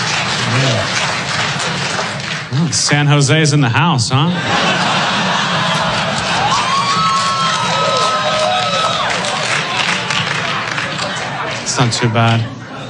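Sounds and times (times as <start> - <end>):
large audience clapping and cheering: 0.0 - 12.8
laughter: 0.0 - 12.8
speech: 2.7 - 4.9, 11.8 - 12.6
scattered shouts from audience: 6.2 - 11.2.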